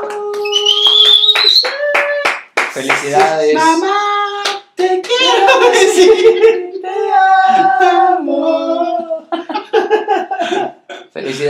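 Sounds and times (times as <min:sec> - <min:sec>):
several people applauding: 0:00.0 - 0:03.5
cheering: 0:00.2 - 0:02.4
shrill whistle-like tones: 0:00.4 - 0:02.1
speech: 0:02.8 - 0:04.1, 0:05.0 - 0:07.0
laughter: 0:05.1 - 0:06.8, 0:07.5 - 0:08.4, 0:09.2 - 0:10.9.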